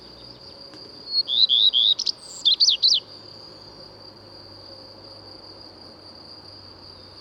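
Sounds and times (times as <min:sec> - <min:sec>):
common redstart singing: 0:01.1 - 0:03.1.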